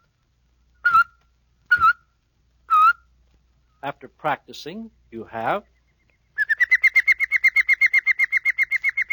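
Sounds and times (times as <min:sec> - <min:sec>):
whistled notes with tut-tut tongue motion and clicky tongue attack: 0:00.8 - 0:02.1, 0:05.7 - 0:09.1
speech: 0:03.8 - 0:05.7.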